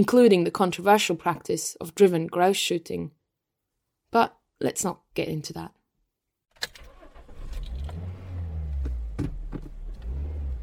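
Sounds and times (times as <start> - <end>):
speech: 0.0 - 3.2, 4.1 - 5.8
car engine rumble driving along a scenic Highland road through the Cairngorms: 6.9 - 10.6.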